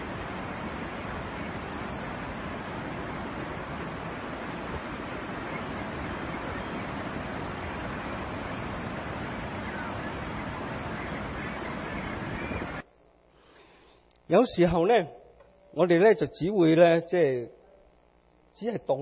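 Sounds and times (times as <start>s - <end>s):
waterfall roaring with churning crashing water: 0.0s - 12.8s
speech: 14.3s - 17.6s, 18.6s - 19.0s.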